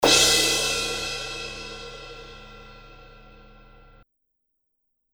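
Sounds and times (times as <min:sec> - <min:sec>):
18 inch vintage crash ride cymbal bell: 0:00.0 - 0:04.0.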